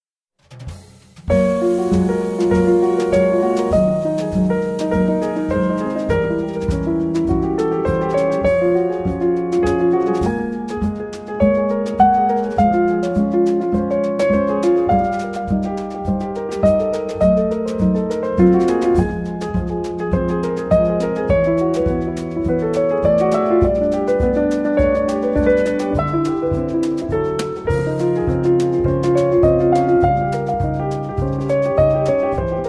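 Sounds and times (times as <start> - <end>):
Sungshin piano: 0.4 - 32.6.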